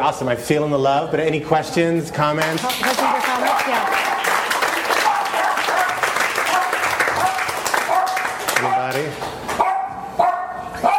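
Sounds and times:
speech: 0.0s - 4.1s, 8.9s - 9.4s
dog barking with sharp yelping barks: 3.0s - 4.2s, 5.0s - 9.0s, 9.6s - 10.9s.

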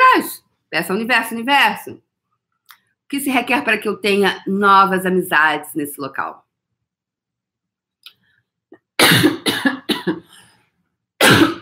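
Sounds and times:
speech: 0.7s - 2.0s, 3.1s - 6.4s, 9.1s - 10.4s
person coughing: 9.0s - 10.4s, 11.2s - 11.6s.

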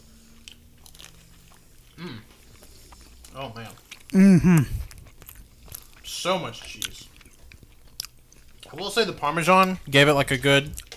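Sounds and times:
person chewing crunchy food: 0.2s - 8.8s, 10.7s - 10.9s
speech: 3.4s - 4.8s, 6.2s - 7.1s, 8.7s - 10.8s
person murmuring: 4.1s - 4.9s.

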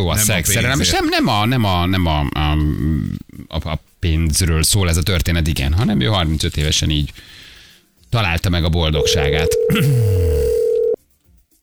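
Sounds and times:
speech: 0.0s - 7.4s, 8.1s - 10.5s
telephone line ringing while calling a radio listener: 9.0s - 11.0s.

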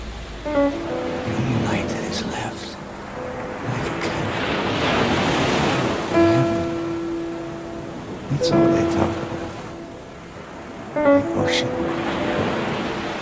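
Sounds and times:
ocean waves surging onto the shore: 0.0s - 13.2s
voice: 1.3s - 2.8s, 3.6s - 4.4s, 6.2s - 6.9s, 8.3s - 9.4s, 11.2s - 11.9s.

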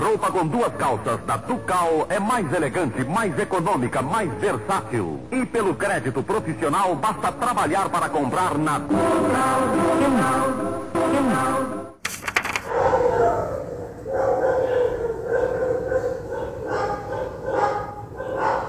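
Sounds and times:
speech: 0.2s - 11.8s
dogs barking: 3.0s - 3.8s, 12.7s - 18.6s
whining howl-like cry: 12.7s - 18.6s.

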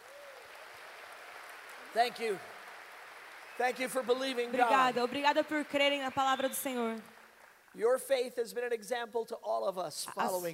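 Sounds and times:
audience applause: 0.0s - 8.2s
speech: 2.0s - 2.5s, 3.6s - 7.1s, 7.7s - 10.5s.

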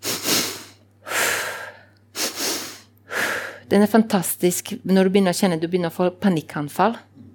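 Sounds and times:
double inhale through the nose and long exhale: 0.0s - 3.7s
speech: 3.7s - 7.1s.

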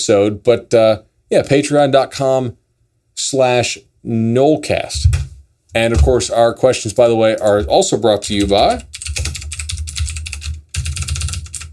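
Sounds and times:
speech: 0.0s - 2.6s, 3.2s - 9.4s
rapid forceful typing on a computer keyboard: 7.3s - 11.7s.

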